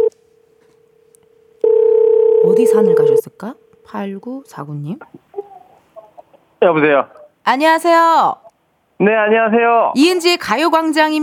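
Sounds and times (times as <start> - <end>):
electronic telephone ringing tone on an outgoing call: 1.6 - 3.2
speech: 2.6 - 5.2, 6.6 - 8.4, 9.0 - 11.2.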